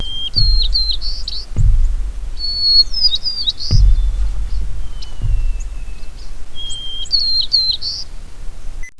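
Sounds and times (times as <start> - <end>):
white-crowned sparrow: 0.0 - 8.2.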